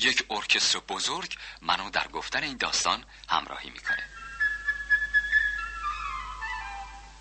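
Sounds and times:
speech: 0:00.0 - 0:04.2
solo flute melody representing a sparrow in an orchestral children's story: 0:04.0 - 0:07.1.

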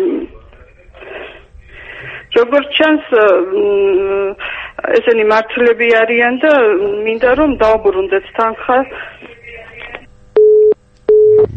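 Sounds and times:
speech: 0:02.4 - 0:09.2
telephone busy tone after a call disconnects: 0:10.4 - 0:11.5.

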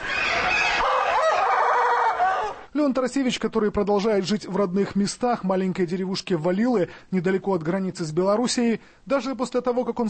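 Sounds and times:
rooster of an odd-looking breed from Latin America crowing beside its cage: 0:00.0 - 0:02.7
speech: 0:02.8 - 0:10.0.

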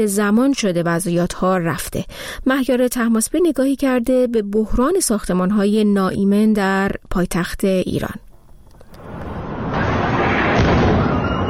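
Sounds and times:
speech: 0:00.0 - 0:08.2
fire roaring at a burning surgical clinic in northern Tehran: 0:08.8 - 0:11.4
oxygen and helium cylinders exploding at a burning surgical clinic in northern Tehran: 0:09.0 - 0:11.4.

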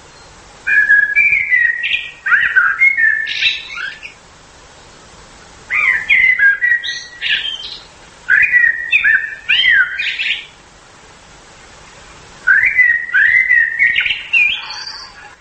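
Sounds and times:
nightingale singing whistles, trills and chirps: 0:00.0 - 0:04.2, 0:05.7 - 0:10.6, 0:12.4 - 0:15.3
speech: 0:00.7 - 0:01.0.

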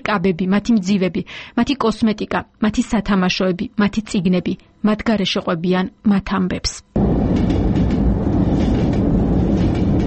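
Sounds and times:
speech: 0:00.1 - 0:07.5
train running along a track mounted on the wall of a room: 0:07.0 - 0:10.0.

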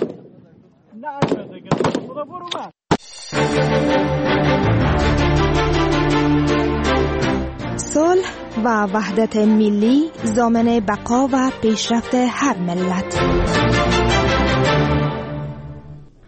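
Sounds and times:
gunshots at shooting practice: 0:00.0 - 0:03.1
speech: 0:01.0 - 0:02.8, 0:08.6 - 0:14.2
dense steady music: 0:03.0 - 0:16.2.

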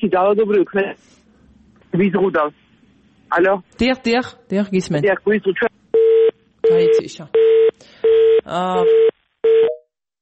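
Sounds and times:
speech: 0:00.0 - 0:01.2, 0:01.9 - 0:02.6, 0:03.3 - 0:05.8, 0:06.7 - 0:09.1
telephone tones after a call is cut off: 0:06.0 - 0:09.8.

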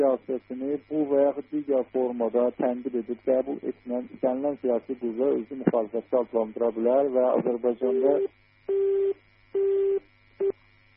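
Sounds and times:
speech: 0:00.0 - 0:10.6
faint low hum: 0:00.0 - 0:10.9
telephone busy tone after call disconnected: 0:07.9 - 0:10.6.

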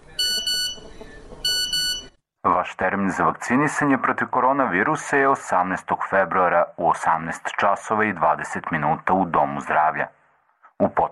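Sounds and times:
phone text-message notification tone: 0:00.2 - 0:02.1
speech: 0:02.6 - 0:10.2, 0:10.8 - 0:11.1.

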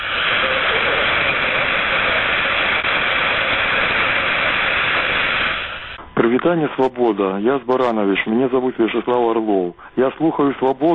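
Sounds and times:
harsh roaring jamming hiss over a jammed shortwave signal: 0:00.0 - 0:10.9
shortwave radio static on the 49-metre band: 0:00.0 - 0:10.9
speech: 0:06.4 - 0:10.9.

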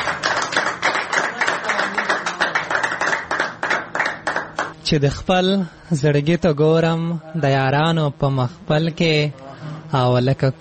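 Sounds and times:
audience applause for a singer: 0:00.0 - 0:04.8
speech: 0:04.9 - 0:10.6.

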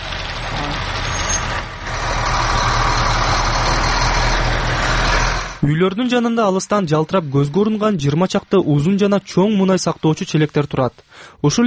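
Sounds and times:
trucks and construction machinery working at a factory building site: 0:00.0 - 0:05.7
speech: 0:05.6 - 0:11.6.

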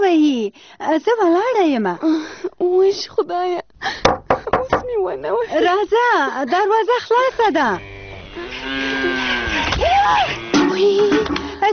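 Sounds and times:
speech: 0:00.0 - 0:08.9, 0:09.8 - 0:11.7
cow mooing: 0:07.6 - 0:11.2.

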